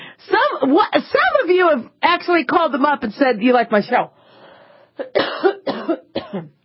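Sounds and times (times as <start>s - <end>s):
speech: 0.6s - 4.2s, 5.0s - 6.6s
wet phlegmy coughing: 5.0s - 6.6s.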